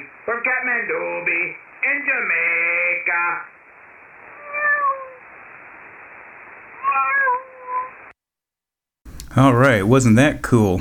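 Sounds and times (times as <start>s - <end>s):
faint hiss: 0.0s - 8.1s
speech: 0.4s - 3.5s, 9.4s - 10.7s
cat meowing: 4.4s - 5.2s, 6.8s - 8.0s.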